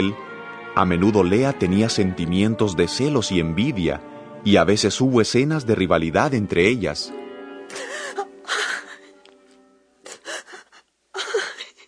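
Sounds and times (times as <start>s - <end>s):
speech: 0.0s - 7.9s
woman crying and whimpering: 7.7s - 9.2s, 10.0s - 11.8s.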